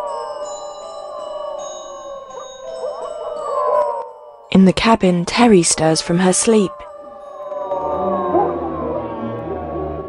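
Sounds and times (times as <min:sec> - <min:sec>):
howling rising from a forest at night: 0:00.0 - 0:04.5, 0:06.7 - 0:10.0
speech: 0:04.5 - 0:06.8.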